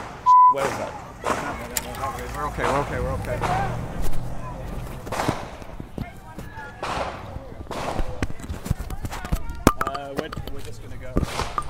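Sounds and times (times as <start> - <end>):
murmur of voices: 0.0 - 11.6
speech: 0.5 - 4.2
gunshots from a drive-by shooting: 2.5 - 4.0, 5.0 - 5.7, 6.8 - 8.2, 11.2 - 11.6.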